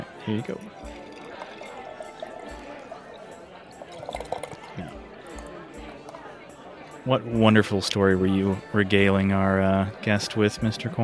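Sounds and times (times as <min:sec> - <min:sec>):
low murmur of voices: 0:00.0 - 0:11.0
speech: 0:00.2 - 0:01.0, 0:07.1 - 0:11.0
drink being poured: 0:00.2 - 0:06.8.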